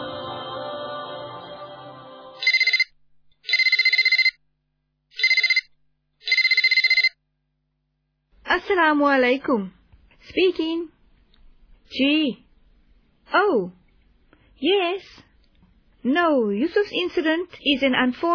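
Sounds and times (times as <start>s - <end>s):
telephone ringing with bright electronic ring bursts: 2.4s - 2.9s, 3.5s - 4.4s, 5.1s - 5.7s, 6.2s - 7.1s
speech: 8.6s - 10.9s, 11.9s - 12.4s, 13.3s - 13.8s, 14.6s - 15.3s, 16.0s - 18.3s.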